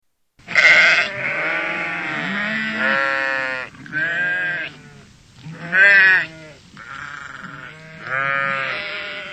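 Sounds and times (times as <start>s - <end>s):
sheep giving wavering nasal bleats: 0.4s - 9.3s.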